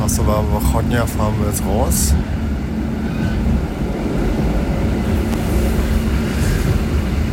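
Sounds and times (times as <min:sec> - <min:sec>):
older train rattling heard from inside the carriage: 0:00.0 - 0:07.3
speech: 0:00.2 - 0:02.4.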